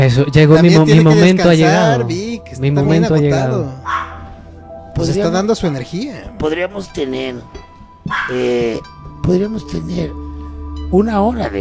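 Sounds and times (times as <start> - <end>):
speech: 0.0 - 3.9, 5.0 - 10.2, 10.9 - 11.6
dog barking with a whining yelping edge: 3.8 - 4.4, 8.1 - 8.5.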